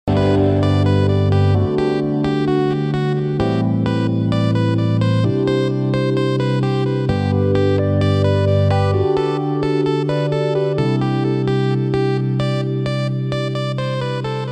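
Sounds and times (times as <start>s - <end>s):
soothing instrumental music: 0.1s - 14.5s.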